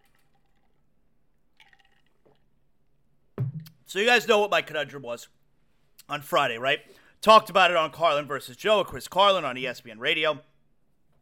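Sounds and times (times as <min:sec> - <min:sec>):
person sipping a bottled drink: 0:00.0 - 0:02.6
speech: 0:03.9 - 0:05.4, 0:06.1 - 0:10.5.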